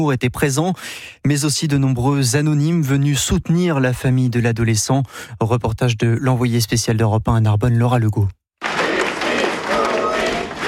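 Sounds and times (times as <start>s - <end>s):
speech: 0.0s - 8.4s
crowd at a street march clapping: 8.6s - 10.6s.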